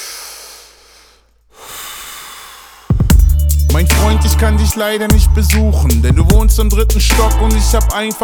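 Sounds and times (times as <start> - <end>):
long hissing exhale of cigarette smoke: 0.0 - 2.9
person drawing on a cigarette outside the door: 0.0 - 3.1
speech: 3.8 - 8.2.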